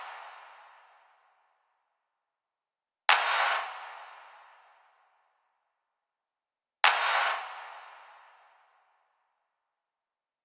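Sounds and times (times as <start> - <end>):
big clap: 3.1 - 3.7, 6.9 - 7.5.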